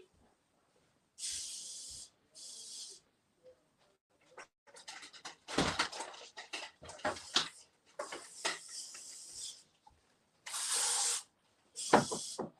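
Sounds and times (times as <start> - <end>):
aerosol spray can hissing: 1.2 - 3.0, 10.5 - 12.4
small clicks and rattles: 4.2 - 8.7.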